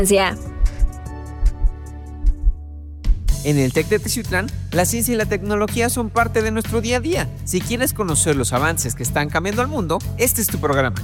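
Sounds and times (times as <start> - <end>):
speech: 0.0 - 0.5, 3.4 - 11.0
heartbeat sound effect: 0.0 - 3.4.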